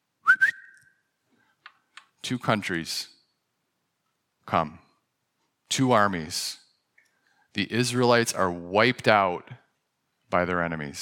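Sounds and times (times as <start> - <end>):
short breathy whistle: 0.2 - 1.0
speech: 2.3 - 3.2, 4.5 - 4.8, 5.8 - 6.6, 7.6 - 9.6, 10.3 - 11.0.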